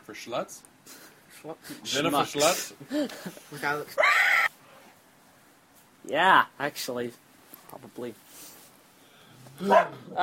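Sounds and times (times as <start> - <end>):
speech: 0.1 - 4.3, 6.0 - 8.5, 9.6 - 10.2
dog barking: 9.6 - 10.0.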